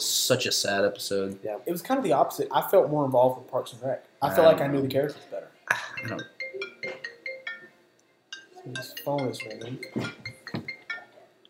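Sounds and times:
speech: 0.0 - 6.4, 8.6 - 10.2
mobile phone ringtone with bright repeated chiming tones: 6.0 - 11.3.

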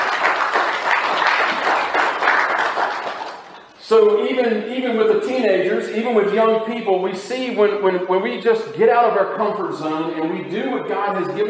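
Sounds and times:
crowd applauding at a service: 0.0 - 3.6
speech: 3.9 - 11.4.

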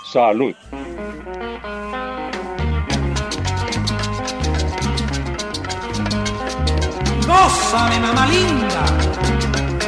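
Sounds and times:
speech: 0.1 - 0.8, 7.4 - 9.7
upbeat 1971 Latin boogaloo track with guapachoso rhythm: 0.5 - 9.8.

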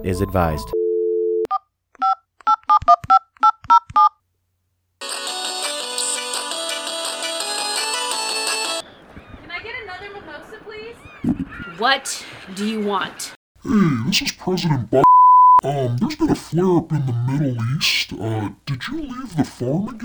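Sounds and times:
speech: 0.0 - 0.8, 11.8 - 15.0, 15.6 - 20.0
touch-tone dialing beeps: 0.7 - 4.1, 15.0 - 15.6
voice speaking: 13.6 - 20.0.

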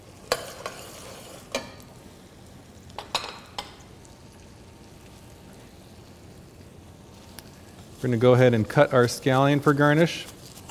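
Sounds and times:
bacon and ham hock sizzling in a pot: 0.0 - 10.6
metal spoon clinking and scraping while stirring a pot: 0.3 - 1.8
speech: 8.0 - 10.3.

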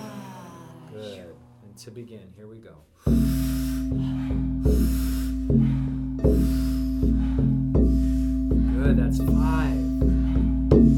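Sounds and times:
speech: 1.0 - 4.4
deep breaths in and soft exhales during a guided breathing exercise: 3.0 - 10.9
low sustained musical drone: 3.3 - 10.9.

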